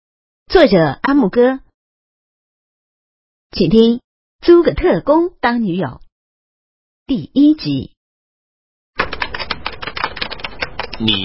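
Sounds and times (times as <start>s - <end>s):
speech: 0.5s - 1.6s, 3.5s - 6.0s, 7.1s - 8.0s, 11.0s - 11.2s
typing on a computer keyboard: 9.0s - 11.2s.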